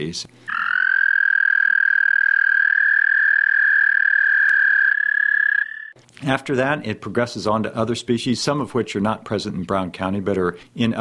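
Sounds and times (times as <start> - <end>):
speech: 0.0 - 0.6, 6.2 - 11.0
frog trilling: 0.5 - 6.0.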